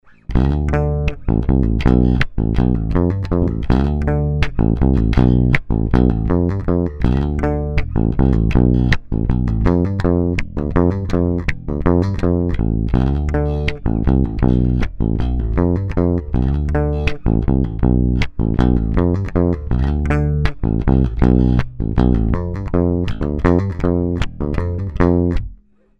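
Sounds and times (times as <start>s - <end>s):
MusicMan Stingray US 2 Eq string mute: 0.1s - 25.9s.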